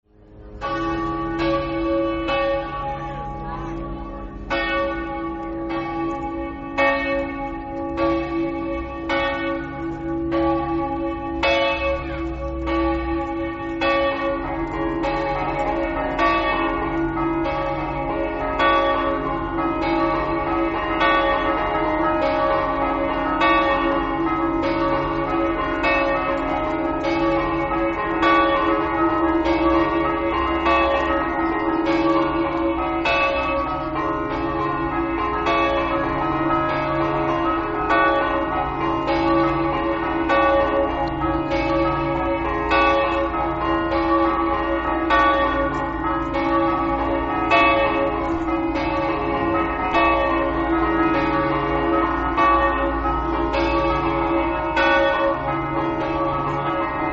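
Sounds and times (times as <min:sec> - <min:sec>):
bells: 0:00.1 - 0:57.1.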